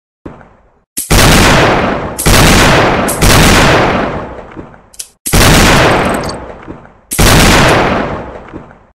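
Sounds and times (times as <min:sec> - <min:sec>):
Colt M1909 revolver gunshot: 0:01.0 - 0:04.4, 0:05.3 - 0:06.4, 0:07.1 - 0:08.5.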